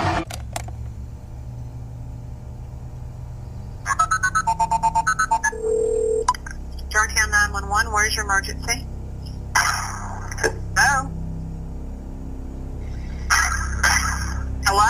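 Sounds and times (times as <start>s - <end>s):
constant low rumble: 0.6s - 3.9s, 4.5s - 14.8s
telephone ringing for an incoming call: 3.9s - 6.3s.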